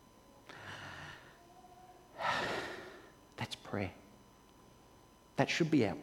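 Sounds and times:
deliberate deep breath in and out: 0.5 - 1.4, 2.2 - 3.2
speech: 3.7 - 4.0, 5.4 - 6.0.

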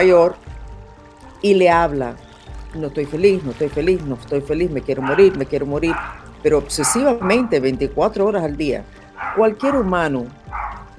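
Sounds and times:
speech: 0.0 - 0.4, 1.4 - 2.2, 2.8 - 10.4
dog barking: 5.0 - 7.6, 9.2 - 9.6, 10.5 - 10.9.

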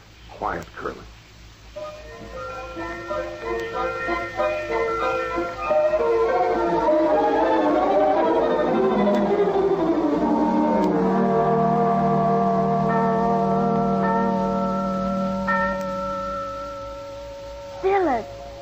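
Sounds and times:
speech: 0.4 - 1.2
bells ringing: 1.8 - 18.6.

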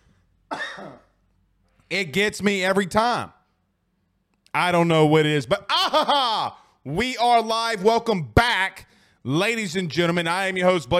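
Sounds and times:
single sharp throaty cough: 0.5 - 1.2
speech: 0.8 - 1.1, 1.9 - 3.4, 4.5 - 10.9.

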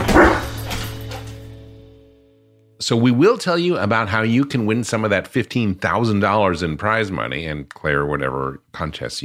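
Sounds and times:
dog barking and yipping: 0.0 - 0.6
speech: 2.8 - 9.2.

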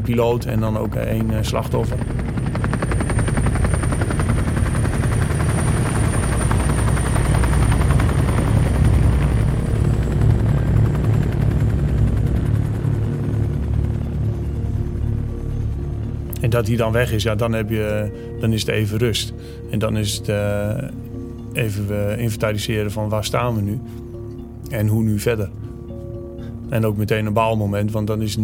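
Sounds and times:
helicopter rotor blades chopping in thin air: 0.0 - 23.6
helicopter engine whine: 0.0 - 26.7
speech: 0.1 - 2.6, 16.5 - 24.0, 24.7 - 25.6, 26.7 - 28.4.

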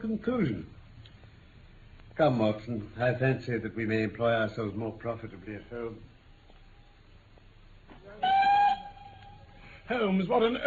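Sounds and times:
speech: 0.0 - 0.8, 2.2 - 6.1, 9.9 - 10.6
train whistle blast: 8.2 - 9.2.

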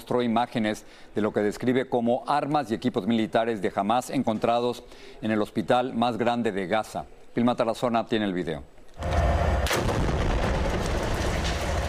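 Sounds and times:
speech: 0.1 - 9.2
bombardment explosions in the Gaza Strip near the region's largest hospital: 9.0 - 11.8
sharp bombardment blast: 9.0 - 11.8.

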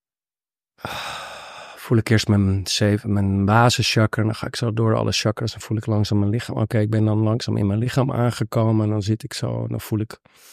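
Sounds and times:
person exhaling softly during seated meditation: 0.8 - 1.8
speech: 1.9 - 10.5.

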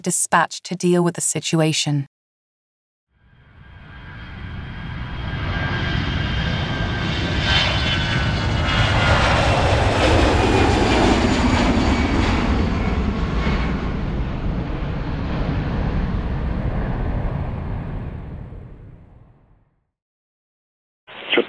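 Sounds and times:
speech: 0.0 - 2.1
jet airliner engine roaring on a runway before takeoff: 3.6 - 18.8.

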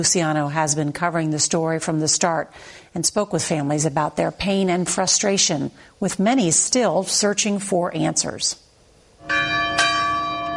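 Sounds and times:
speech: 0.0 - 8.6
church bell tolling: 9.2 - 10.5.

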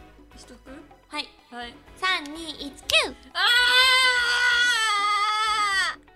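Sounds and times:
speech: 0.4 - 4.4
frustrated voiced scream: 3.4 - 6.1.

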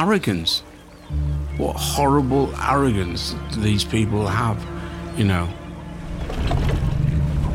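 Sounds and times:
speech: 0.0 - 5.6
boat engine rumbling as the vessel gets underway: 0.0 - 7.5
faint water: 0.0 - 7.5.

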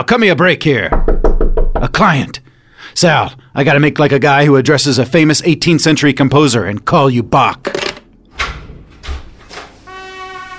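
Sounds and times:
speech: 0.0 - 1.1, 1.8 - 7.9
door opening: 7.6 - 9.8.

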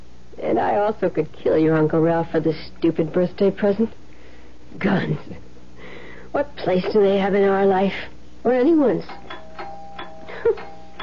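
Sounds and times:
quiet room hum: 0.0 - 11.0
speech: 0.4 - 4.0, 4.7 - 5.5, 6.3 - 9.3
back doorbell ringing: 9.0 - 11.0.

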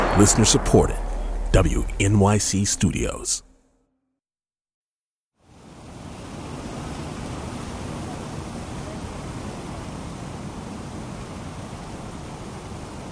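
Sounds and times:
speech: 0.2 - 3.5
water rushing into memorial fountain pools: 5.5 - 13.0.

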